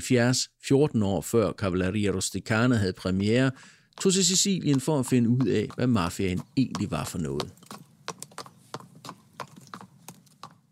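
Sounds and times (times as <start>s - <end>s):
speech: 0.0s - 7.8s
horse hooves clip-clopping in a walking rhythm: 2.5s - 10.7s.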